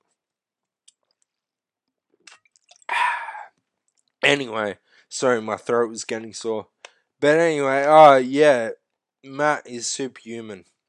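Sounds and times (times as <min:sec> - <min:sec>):
gulping and swallowing cola: 0:02.2 - 0:03.5
person sipping cola: 0:02.2 - 0:04.1
mouth clicks: 0:02.2 - 0:04.2
speech: 0:04.3 - 0:10.8.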